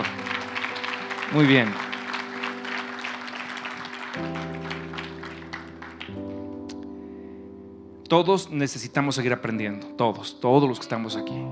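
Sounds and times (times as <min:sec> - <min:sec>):
large crowd applauding: 0:00.0 - 0:06.4
sustained keyboard chords: 0:00.0 - 0:11.5
speech: 0:01.3 - 0:01.8, 0:08.1 - 0:11.5.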